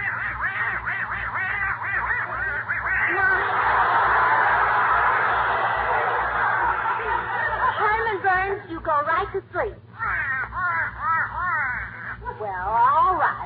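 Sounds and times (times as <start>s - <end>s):
duck quacking: 0.0s - 3.4s, 10.0s - 12.2s
steady rasping chatter: 0.0s - 13.4s
laughter: 2.0s - 8.9s.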